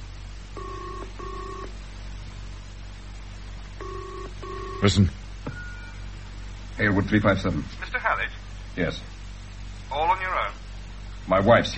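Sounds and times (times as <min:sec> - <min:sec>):
steady hiss: 0:00.0 - 0:11.7
two-tone telephone ringing tone for an incoming call: 0:00.6 - 0:01.7, 0:03.8 - 0:04.8
speech: 0:04.8 - 0:05.2, 0:06.8 - 0:09.1, 0:11.3 - 0:11.7.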